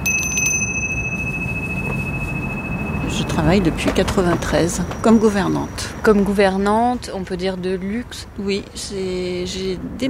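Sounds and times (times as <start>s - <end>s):
small hand bell ringing: 0.0s - 3.8s
speech: 3.4s - 10.0s.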